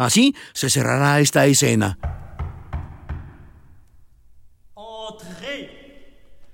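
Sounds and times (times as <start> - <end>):
speech: 0.0 - 2.2
firm knocks on a door: 2.0 - 3.7.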